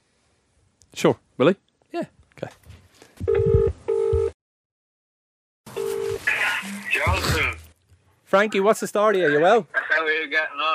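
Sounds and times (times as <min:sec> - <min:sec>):
speech: 0:01.0 - 0:02.6, 0:08.3 - 0:10.7
phone ringing tone as a call is placed: 0:03.3 - 0:04.4, 0:05.7 - 0:07.2.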